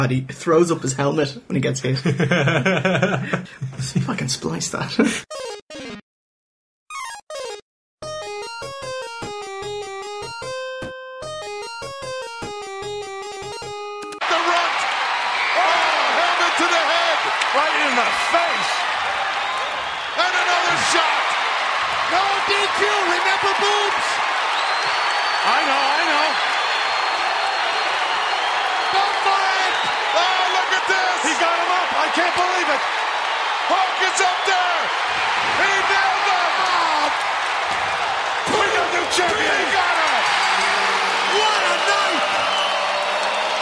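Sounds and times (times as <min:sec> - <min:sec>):
speech: 0:00.0 - 0:05.3
laughter: 0:02.0 - 0:03.8
packed wrestling arena crowd roaring: 0:14.2 - 0:43.6.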